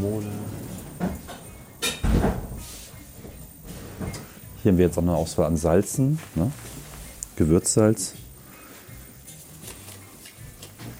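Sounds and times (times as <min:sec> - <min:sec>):
automatic sliding door opening and closing: 0:00.3 - 0:01.5
speech: 0:04.6 - 0:06.7, 0:07.4 - 0:08.2.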